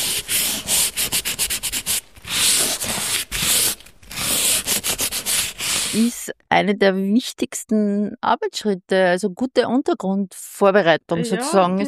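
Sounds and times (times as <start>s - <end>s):
hand sanding of a chalk gesso ground: 0.0s - 6.1s
speech: 5.9s - 11.8s.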